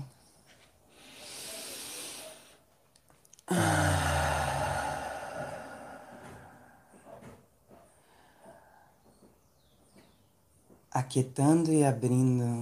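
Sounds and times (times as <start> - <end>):
deep breath with inhale and sighing exhale: 0.8 - 2.7, 3.5 - 9.1
speech: 11.0 - 12.6.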